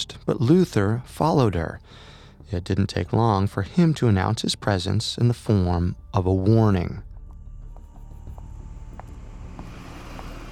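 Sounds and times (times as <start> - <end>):
speech: 0.0 - 7.1
car engine rumble and road noise: 7.6 - 10.5.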